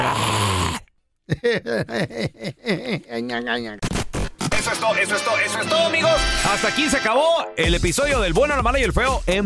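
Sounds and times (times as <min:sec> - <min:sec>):
loud snoring of a sleeping mother-in-law: 0:00.0 - 0:00.9
laughter: 0:01.3 - 0:03.2
speech: 0:01.3 - 0:04.0, 0:04.6 - 0:09.4.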